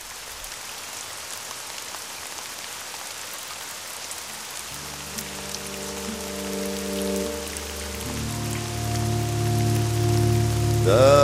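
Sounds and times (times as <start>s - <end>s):
steady rain hissing and pattering: 0.0s - 11.2s
soft sustained musical chords: 4.7s - 11.2s.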